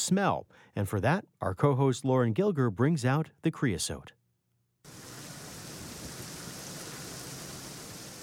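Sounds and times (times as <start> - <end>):
speech: 0.1 - 4.2
heavy monsoon rainstorm roaring in Arizona: 4.9 - 8.2.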